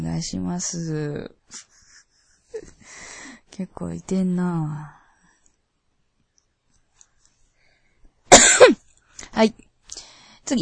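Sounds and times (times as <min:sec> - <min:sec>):
speech: 0:00.1 - 0:01.8, 0:02.5 - 0:05.0, 0:08.6 - 0:09.6
person coughing after choking on something: 0:08.3 - 0:08.8.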